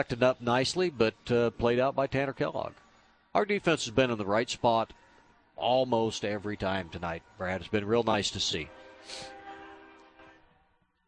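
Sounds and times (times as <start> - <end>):
speech: 0.0 - 2.8, 3.4 - 5.0, 5.6 - 9.4
passing train horn blaring: 8.4 - 10.6.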